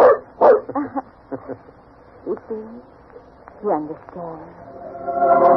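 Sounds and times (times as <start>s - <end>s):
dog barking: 0.0s - 0.7s
speech: 3.6s - 5.4s.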